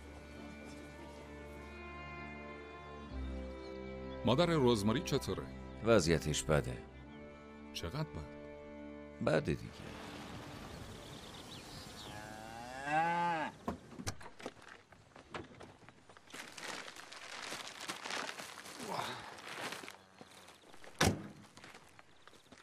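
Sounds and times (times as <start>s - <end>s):
speech: 4.2s - 6.9s, 7.7s - 8.4s, 9.2s - 10.1s
Charolais cattle mooing: 12.0s - 13.6s
rustling: 14.2s - 21.0s
shuffling footsteps: 14.4s - 22.6s
thuds: 20.9s - 21.5s.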